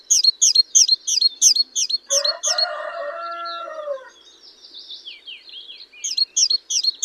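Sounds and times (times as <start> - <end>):
Parus major great tit calling: 0.0 - 3.6, 5.7 - 7.0.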